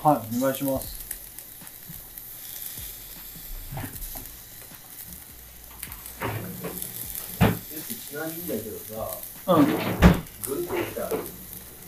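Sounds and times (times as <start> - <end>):
speech: 0.0 - 1.0, 8.2 - 11.4
oysters sizzling and popping as they grill: 0.0 - 11.8.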